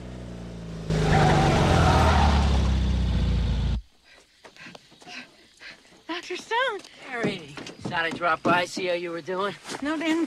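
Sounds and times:
car skidding and tire-squealing as it stops on a road: 0.9s - 3.0s
speech: 6.8s - 10.2s.

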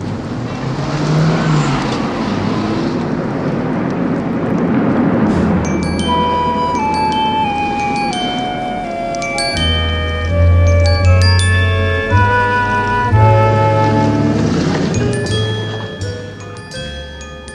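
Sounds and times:
car driving away: 0.0s - 17.4s
road noise: 0.0s - 17.5s
high ringing tones: 5.4s - 17.5s.

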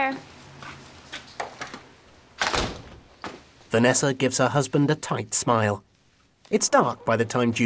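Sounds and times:
speech: 0.0s - 0.3s, 3.7s - 5.9s, 6.5s - 7.6s
door sliding and swinging open: 2.4s - 3.0s.

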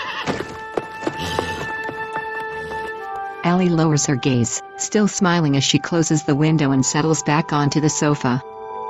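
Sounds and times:
horse hooves clip-clopping on a hard surface: 0.0s - 3.3s
speech: 3.4s - 8.5s.

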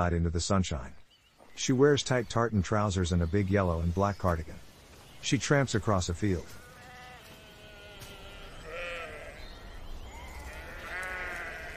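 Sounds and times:
speech: 0.0s - 1.0s, 1.6s - 4.6s, 5.2s - 6.6s
sheep bleating across an open field on a farm: 6.4s - 11.7s.

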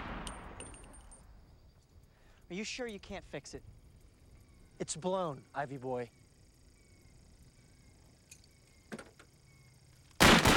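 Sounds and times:
gunshot fired at a cutout target: 0.0s - 1.2s, 10.2s - 10.5s
speech: 2.5s - 3.8s, 4.8s - 6.2s.

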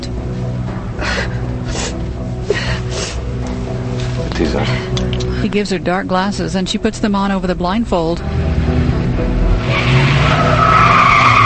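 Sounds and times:
car engine rumble as the car pulls away: 0.0s - 11.4s
speech: 4.4s - 8.5s
car tires skidding and squealing: 8.4s - 11.4s.

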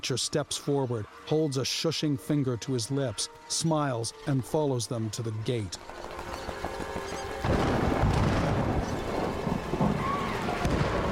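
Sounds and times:
speech: 0.0s - 7.9s
heavy rain on an outdoor compound: 7.4s - 11.0s
thunder rumbling: 7.4s - 11.0s.

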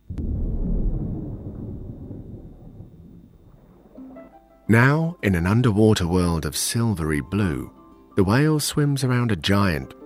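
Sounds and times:
thunder from a lightning storm rumbling: 0.0s - 4.3s
speech: 4.7s - 10.0s.

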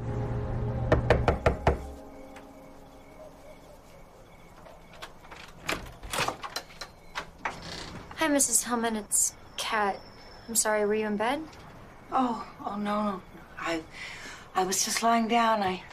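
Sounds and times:
faint ambience: 0.0s - 15.9s
sharp knocks on a front door: 0.9s - 1.9s
speech: 8.4s - 15.9s.

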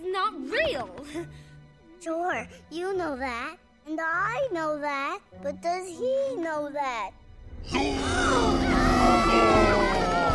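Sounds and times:
speech: 0.5s - 10.0s
yell echoing inside a hole: 7.6s - 10.3s.

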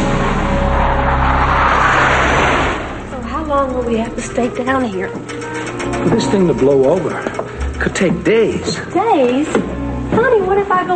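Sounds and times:
fighter plane engine roaring while flying erratically out of control: 0.0s - 4.3s
speech: 3.7s - 10.9s.

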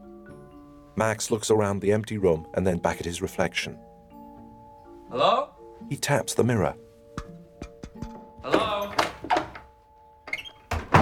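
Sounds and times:
speech: 1.0s - 3.9s, 5.1s - 6.8s
front door opening and closing: 8.4s - 11.0s.

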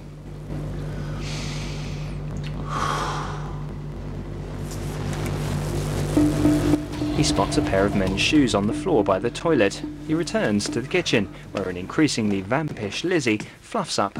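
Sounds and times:
steady low hum: 0.0s - 14.1s
man taking deep breaths in a bathroom: 0.8s - 3.7s, 11.3s - 11.6s
speech: 7.2s - 14.1s.

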